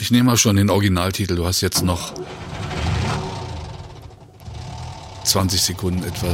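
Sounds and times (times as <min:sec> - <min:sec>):
speech: 0:00.0 - 0:02.5, 0:05.3 - 0:06.3
American pickup truck engine running: 0:01.8 - 0:06.3.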